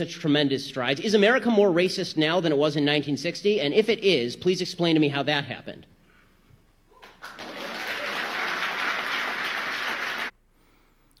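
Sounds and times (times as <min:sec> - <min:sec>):
speech: 0:00.0 - 0:05.9
audience clapping: 0:07.0 - 0:10.3.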